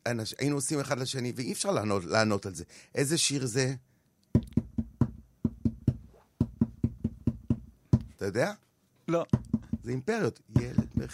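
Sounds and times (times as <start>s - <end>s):
speech: 0.0s - 4.6s, 8.2s - 11.1s
hand tapping a song's rhythm on a hard surface: 4.3s - 8.2s, 9.3s - 11.1s.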